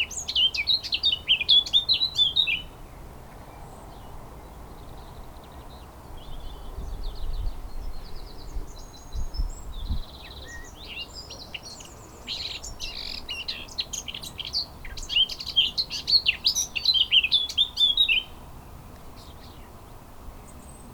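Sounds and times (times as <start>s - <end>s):
Eurasian blackcap Sylvia atricapilla warbling song: 0.0s - 2.8s, 5.7s - 18.4s.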